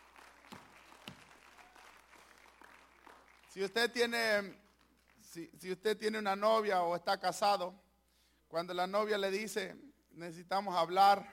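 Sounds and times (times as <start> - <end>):
church audience applauding during an evening service: 0.0 - 3.8
speech: 3.6 - 4.6, 5.3 - 7.8, 8.5 - 11.3.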